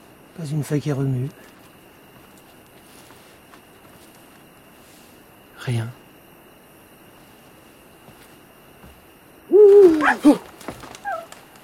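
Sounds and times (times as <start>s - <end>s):
speech: 0.4s - 1.6s, 5.7s - 6.0s
owl hooting at night in the woods: 9.4s - 11.4s.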